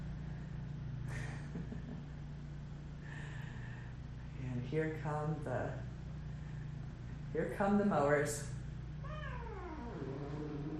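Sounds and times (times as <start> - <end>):
low hum: 0.0 - 10.7
speech: 4.7 - 5.9, 7.3 - 8.6
cat yowling in a cat fight: 9.0 - 10.7.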